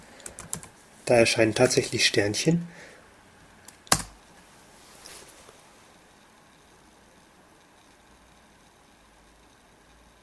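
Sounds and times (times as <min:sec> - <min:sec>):
computer keyboard keystrokes while typing a password: 0:00.2 - 0:00.7, 0:03.7 - 0:04.2
speech: 0:01.1 - 0:02.9.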